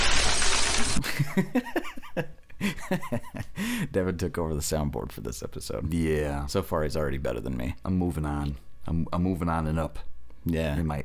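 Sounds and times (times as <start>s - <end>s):
glass window shattering sound effect: 0.0s - 1.0s
laughter: 1.0s - 3.6s
speech: 1.2s - 2.3s, 3.9s - 11.0s.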